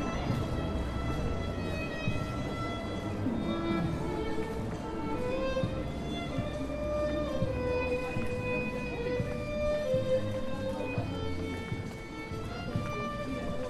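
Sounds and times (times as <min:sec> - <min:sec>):
murmuring voices on a lively street in Kyiv: 0:00.0 - 0:13.6.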